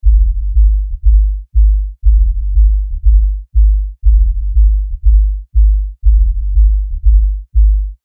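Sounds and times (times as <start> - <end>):
bass drum with high cut: 0.0 - 8.0.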